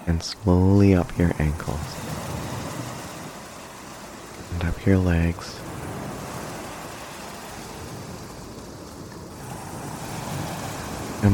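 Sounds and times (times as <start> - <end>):
ocean waves washing onto the shore: 0.0 - 11.3
speech: 0.1 - 2.2, 4.6 - 5.7.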